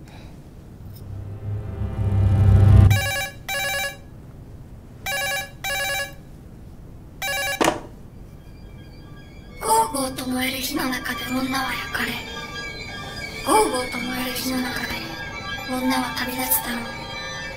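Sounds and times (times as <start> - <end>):
low rumbling swell: 0.8 - 3.2, 8.1 - 17.5
telephone ringing in paired bursts: 5.1 - 6.2, 7.2 - 17.5
brief voice-like sound: 9.6 - 17.5
speech: 10.3 - 12.3, 13.5 - 15.0, 15.7 - 17.0.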